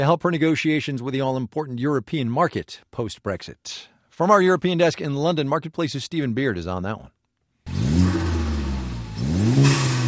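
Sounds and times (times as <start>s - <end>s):
speech: 0.0s - 8.0s
hand-built Westfield sports car engine revving hard: 7.7s - 10.0s.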